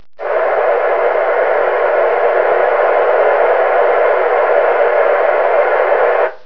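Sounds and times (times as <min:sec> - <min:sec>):
static: 0:00.0 - 0:06.4.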